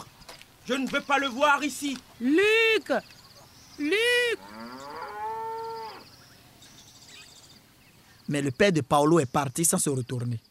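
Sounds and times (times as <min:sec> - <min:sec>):
birds chirping: 0:00.0 - 0:10.4
speech: 0:00.7 - 0:03.2, 0:03.8 - 0:04.7, 0:08.3 - 0:10.4
cow mooing: 0:04.3 - 0:06.1.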